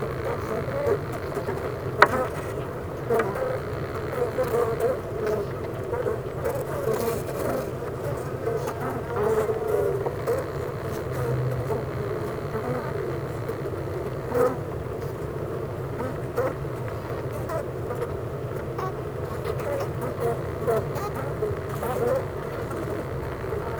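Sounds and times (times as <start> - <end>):
honey bees buzzing in a hive at Clara Vale in Gateshead, United Kingdom: 0.0 - 23.7.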